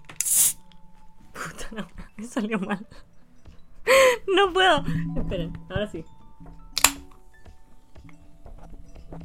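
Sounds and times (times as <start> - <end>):
Coca-Cola can opening with a pop and fizzy hiss: 0.1 - 0.6
speech: 1.7 - 3.1, 3.9 - 6.1.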